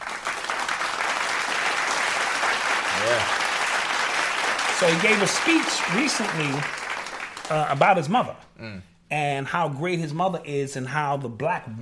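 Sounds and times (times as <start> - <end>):
steady crowd applause with many hands clapping: 0.0 - 7.8
speech: 3.0 - 3.4, 4.8 - 6.8, 7.5 - 11.8.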